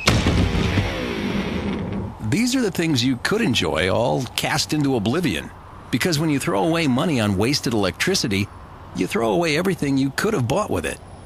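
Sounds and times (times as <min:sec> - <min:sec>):
electric guitar crashing on the ground: 0:00.0 - 0:02.2
speech: 0:02.3 - 0:11.1.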